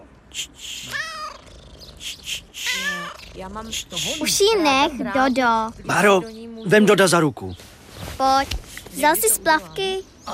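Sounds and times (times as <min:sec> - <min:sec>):
speech: 0:00.4 - 0:01.2, 0:02.0 - 0:10.3
cat meowing: 0:00.8 - 0:04.3.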